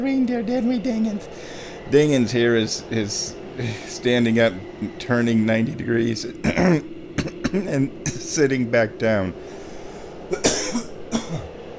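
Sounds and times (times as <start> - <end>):
speech: 0.0 - 9.6
rough coughs: 6.5 - 8.2, 10.3 - 11.5.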